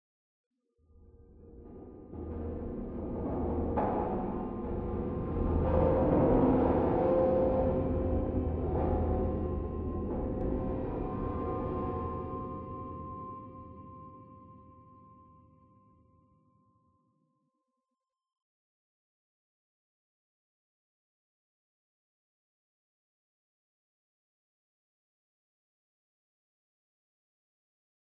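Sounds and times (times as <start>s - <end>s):
interior metal drone: 1.0s - 13.2s.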